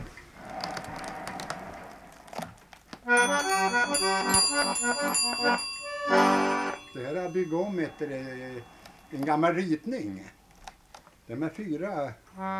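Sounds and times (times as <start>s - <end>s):
tonal instrument notes: 3.1s - 9.9s
bells ringing on a six-rank mechanical instrument rebuilt from an old catalogue: 3.1s - 10.1s
speech: 7.9s - 10.4s, 11.3s - 12.5s.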